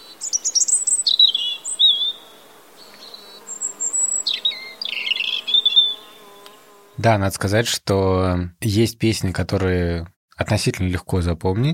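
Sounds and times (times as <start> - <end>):
European robin singing: 0.0 - 6.7
speech: 7.0 - 11.7.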